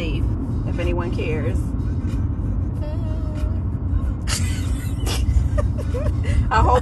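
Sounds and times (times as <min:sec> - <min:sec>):
car interior road noise while driving: 0:00.0 - 0:06.8
speech: 0:00.8 - 0:01.8.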